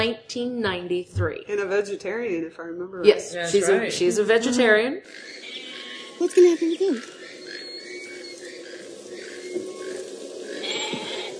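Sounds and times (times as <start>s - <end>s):
speech: 0.0s - 5.6s, 6.2s - 7.2s
goat bleating: 5.4s - 6.4s, 10.6s - 11.3s.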